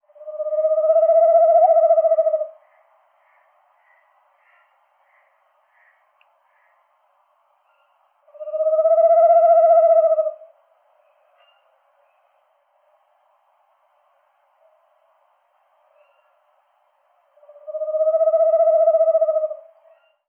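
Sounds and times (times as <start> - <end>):
tawny owl calling: 0.1 - 6.8, 7.7 - 10.6, 17.4 - 20.2.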